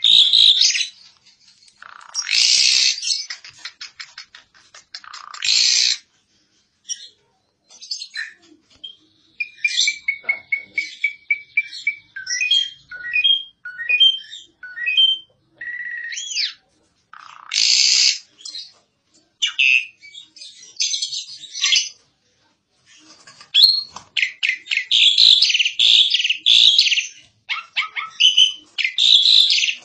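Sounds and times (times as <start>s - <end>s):
Asian pied starling singing: 0.0s - 1.0s, 1.7s - 6.1s, 6.9s - 18.7s, 23.3s - 29.8s.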